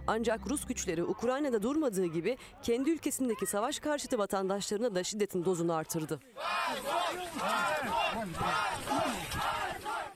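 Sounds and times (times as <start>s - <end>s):
speech: 0.1s - 9.5s
large protest crowd chanting anti-war slogans and shouting: 5.2s - 10.1s.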